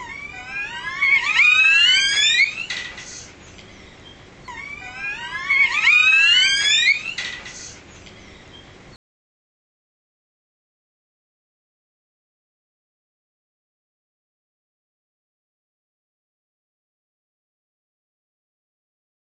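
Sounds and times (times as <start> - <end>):
long calls: 0.0 - 8.7.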